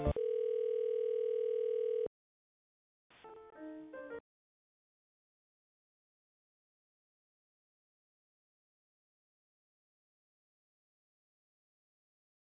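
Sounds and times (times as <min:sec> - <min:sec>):
telephone line tones while a helpline call is transferred: 0:00.1 - 0:02.1.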